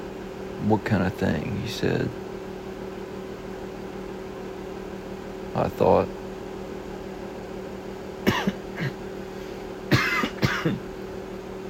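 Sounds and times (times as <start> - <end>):
low steady hum: 0.0 - 11.6
speech: 0.6 - 2.2, 5.6 - 6.2, 10.6 - 10.9
person coughing: 8.2 - 9.0, 9.9 - 10.9.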